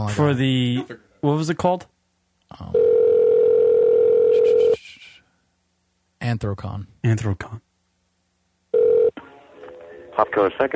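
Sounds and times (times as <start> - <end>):
speech: 0.0 - 1.9, 2.5 - 2.8, 6.2 - 7.6, 10.2 - 10.7
telephone dial tone: 2.8 - 4.8, 8.8 - 9.1.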